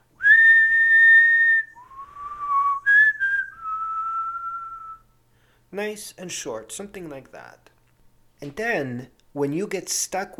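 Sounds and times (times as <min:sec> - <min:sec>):
person whistling a tune: 0:00.2 - 0:05.1
speech: 0:05.7 - 0:07.7, 0:08.4 - 0:10.3.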